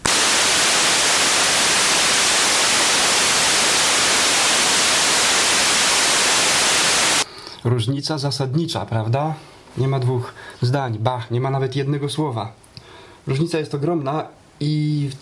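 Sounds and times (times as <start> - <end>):
broadband radio static from FM receiver idle output: 0.0 - 7.3
speech: 7.6 - 12.6, 13.2 - 15.2.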